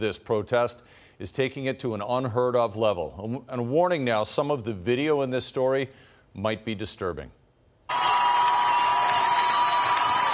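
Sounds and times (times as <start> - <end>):
speech: 0.0 - 8.0
crowd of thousands cheering in Iran: 7.9 - 10.3
whistles from a crowd: 7.9 - 10.3.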